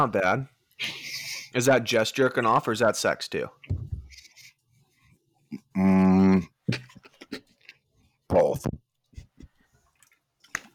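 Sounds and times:
speech: 0.0 - 3.8, 5.8 - 6.8
person chewing food: 6.8 - 8.0.

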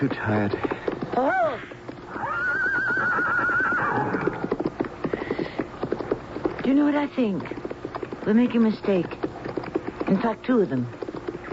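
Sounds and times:
speech: 0.0 - 1.8, 6.6 - 7.6, 8.2 - 9.3, 10.1 - 11.0
chariot wheels rolling: 0.0 - 11.5
clatter of hooves: 0.0 - 11.5
horse neighing: 1.1 - 5.1.

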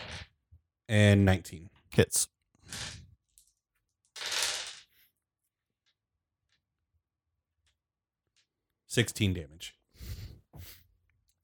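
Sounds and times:
dice clattering and rattling across a hard tabletop: 0.0 - 0.3, 2.6 - 5.0
speech: 0.9 - 3.0, 9.0 - 9.8.

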